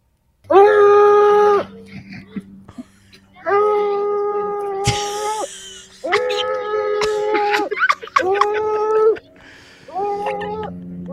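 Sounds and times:
dog howling in wavering bursts: 0.5s - 2.4s, 3.4s - 5.4s, 6.0s - 9.3s, 9.9s - 10.7s
laughter: 1.6s - 10.8s.

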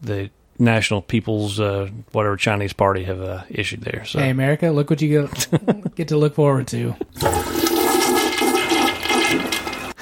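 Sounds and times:
speech: 0.0s - 7.4s
laughter: 5.3s - 6.0s
toilet flushing: 7.1s - 10.0s.

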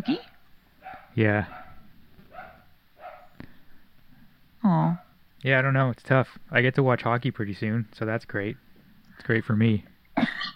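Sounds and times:
dog barking: 0.2s - 3.4s
speech: 1.2s - 1.6s, 4.6s - 8.6s, 9.2s - 10.5s.

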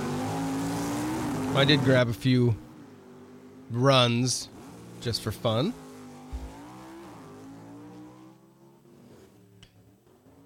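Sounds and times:
race car engine revving at a starting line launch: 0.0s - 2.2s, 4.5s - 9.3s
speech: 1.6s - 2.6s, 3.7s - 5.8s.

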